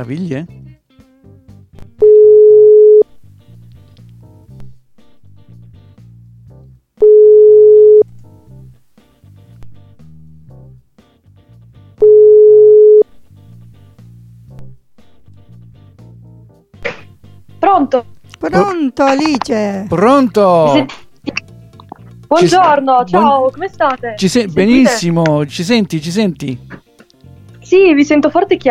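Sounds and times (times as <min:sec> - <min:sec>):
speech: 0:00.0 - 0:00.6, 0:17.9 - 0:21.0, 0:22.3 - 0:26.8, 0:27.7 - 0:28.6
telephone ring tone while a phone call is placed in Italy: 0:02.0 - 0:03.1, 0:07.0 - 0:08.1, 0:12.0 - 0:13.1.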